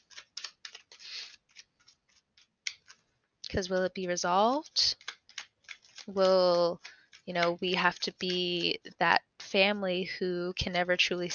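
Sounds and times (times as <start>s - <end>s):
tarot card deck riffle: 0.0s - 3.0s, 4.7s - 8.8s
tarot cards being pulled from a deck, snapping and flicking: 0.0s - 3.1s, 4.6s - 9.6s
speech: 3.5s - 5.0s, 6.1s - 11.3s.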